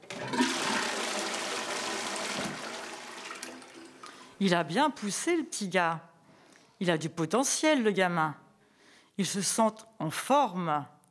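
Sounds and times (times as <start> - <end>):
toilet flushing: 0.0 - 4.4
speech: 4.4 - 6.1, 6.8 - 8.4, 9.2 - 11.0.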